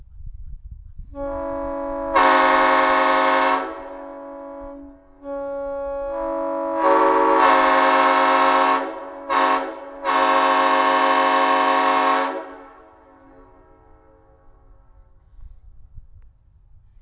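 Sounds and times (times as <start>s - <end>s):
Nathan M5 horn: 1.2s - 14.6s.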